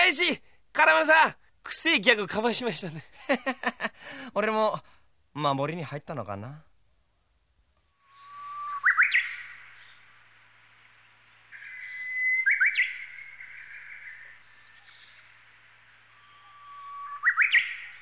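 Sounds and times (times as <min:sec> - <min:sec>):
speech: 0:00.1 - 0:06.7
Japanese bush warbler singing in a town: 0:08.1 - 0:10.2, 0:11.4 - 0:18.0.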